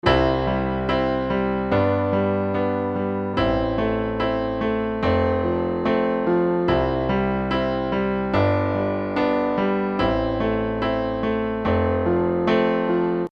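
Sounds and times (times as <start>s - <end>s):
piano: 0.0s - 13.3s.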